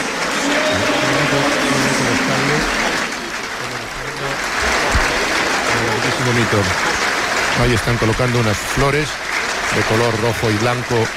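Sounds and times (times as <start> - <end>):
huge stadium crowd applauding in tribute: 0.0 - 11.1
speech: 6.3 - 7.0, 7.6 - 11.1.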